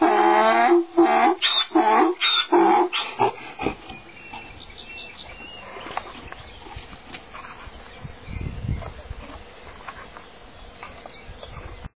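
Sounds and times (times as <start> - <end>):
donkey braying: 0.0 - 4.8.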